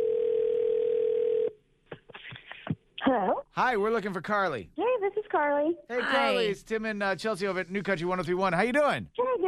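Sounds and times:
telephone dial tone: 0.0s - 1.5s
speech: 3.1s - 9.4s.

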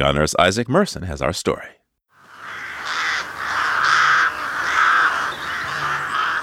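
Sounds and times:
speech: 0.0s - 1.8s
faint outdoor noise: 0.0s - 6.4s
crows cawing: 2.2s - 6.4s.

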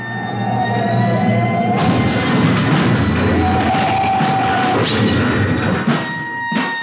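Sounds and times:
siren-like horn wail: 0.0s - 5.0s
speeding semi truck scraping and crunching into a storefront: 1.6s - 6.7s.

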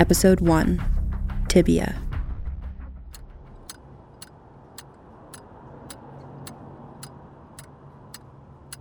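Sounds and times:
speech: 0.0s - 0.9s, 1.5s - 2.0s
metronome ticking: 3.1s - 8.7s.

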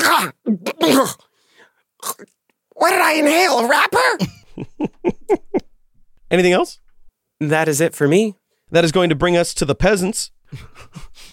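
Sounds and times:
voice imitating a goblin choking and coughing: 0.0s - 1.2s, 2.0s - 2.3s, 4.2s - 4.6s
speech: 0.2s - 1.2s, 2.0s - 5.7s, 6.3s - 6.8s, 7.4s - 11.2s.

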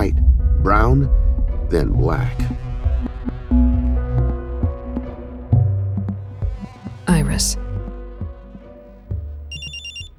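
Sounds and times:
speech: 0.0s - 2.7s, 7.4s - 7.6s
low humming drone: 0.0s - 9.4s
cell phone ringing: 9.5s - 10.1s.

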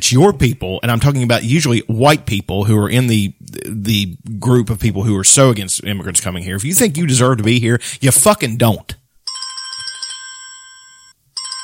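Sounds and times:
speech: 0.0s - 9.0s
phone ringtone with bright electronic melody: 9.2s - 11.6s.

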